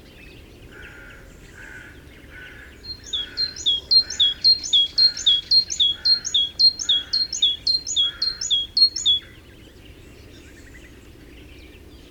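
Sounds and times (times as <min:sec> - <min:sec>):
great tit song: 0:02.8 - 0:09.3.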